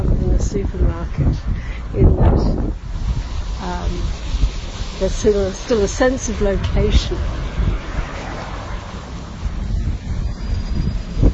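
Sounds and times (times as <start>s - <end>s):
blustery wind buffeting the microphone: 0.0s - 11.3s
speech: 5.0s - 7.5s.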